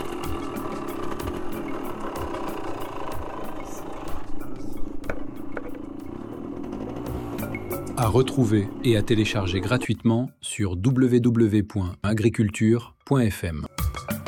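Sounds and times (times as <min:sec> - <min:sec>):
motorcycle engine running with low rumble and rattling clatter: 0:00.0 - 0:09.8
speech: 0:08.0 - 0:13.7.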